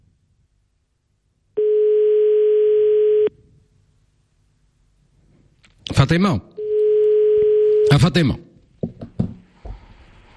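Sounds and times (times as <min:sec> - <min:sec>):
telephone ringing during a live radio call-in segment: 0:01.6 - 0:03.3, 0:06.6 - 0:08.0
speech: 0:06.0 - 0:06.6, 0:07.9 - 0:08.4.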